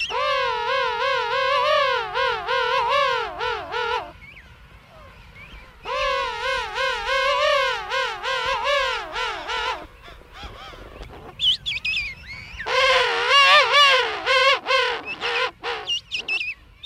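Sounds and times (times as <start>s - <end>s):
penguins calling in a dense breeding colony of parents and chicks: 0.0s - 4.1s, 5.9s - 9.9s, 12.7s - 16.4s.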